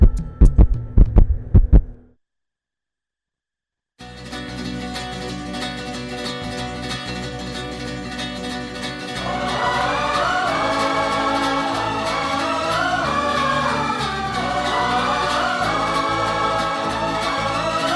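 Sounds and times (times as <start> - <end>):
deep heartbeat thumping in double beats: 0.0 - 2.0
steady music: 6.4 - 17.9.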